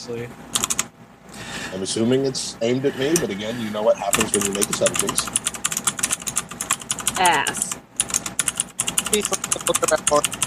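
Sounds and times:
speech: 0.0 - 0.8, 1.7 - 5.6, 7.2 - 7.8, 9.1 - 10.4
rapid computer keyboard typing: 0.6 - 0.9, 4.1 - 10.4.

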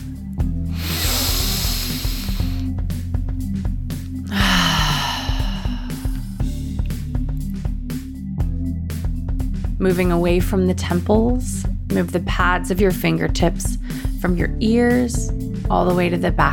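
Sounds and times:
steady soft music: 0.0 - 16.5
deep breath held and released through the mouth: 0.6 - 3.1, 4.2 - 6.6, 13.8 - 14.2
speech: 9.8 - 16.5.

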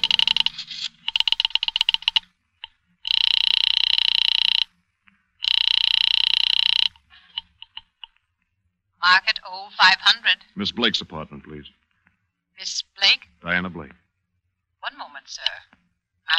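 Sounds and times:
rotary phone dial clicking on a pay phone: 0.0 - 2.3, 3.1 - 4.7, 5.4 - 8.0
speech: 9.1 - 11.8, 13.4 - 14.0.

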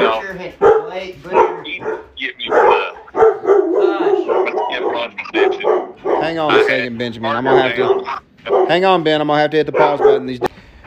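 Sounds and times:
dogs barking outside: 0.0 - 9.0, 9.6 - 10.5
speech: 6.3 - 10.5.

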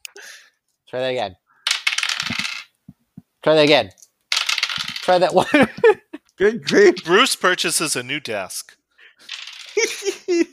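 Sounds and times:
speech: 0.2 - 1.4, 3.4 - 4.0, 5.1 - 10.5
dice clicking as they settle on a desk: 1.7 - 2.7, 4.3 - 5.1, 9.3 - 9.8
dice tumbling across a desk in a tabletop game: 1.7 - 2.7, 4.3 - 5.2, 9.3 - 10.0
laughter: 5.4 - 7.3, 9.8 - 10.5.

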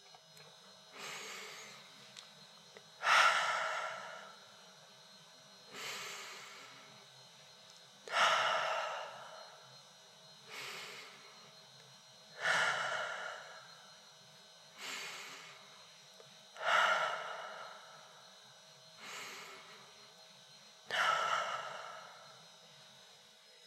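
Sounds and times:
slow deep breaths through the nose in a breathing exercise: 1.0 - 2.2, 2.9 - 4.8, 5.5 - 7.2, 8.0 - 11.6, 12.3 - 14.1, 14.7 - 20.2, 20.8 - 22.7.

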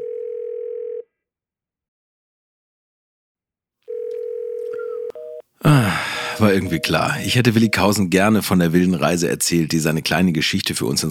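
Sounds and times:
telephone dial tone while a call is placed: 0.0 - 1.0, 3.9 - 5.4
speech: 6.4 - 11.0.

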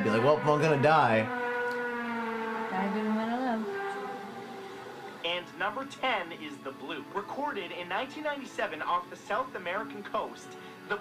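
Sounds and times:
eerie siren-like wail recorded on amateur video in British Columbia Canada: 0.0 - 5.2
speech: 0.1 - 1.4, 2.7 - 3.7, 5.4 - 10.9.

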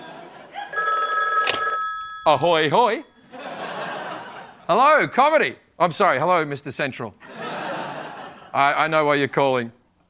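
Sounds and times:
laughter: 0.0 - 0.8, 3.2 - 4.7, 7.2 - 8.7
telephone ringing with electronic trill: 0.7 - 3.1
speech: 2.3 - 3.1, 4.7 - 7.3, 8.5 - 10.0.

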